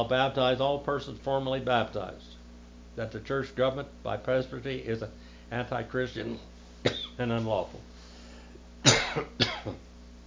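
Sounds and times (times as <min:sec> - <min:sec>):
speech: 0:00.0 - 0:02.4, 0:03.0 - 0:07.9, 0:08.8 - 0:09.9
throaty coughs: 0:06.8 - 0:07.2, 0:08.8 - 0:09.9.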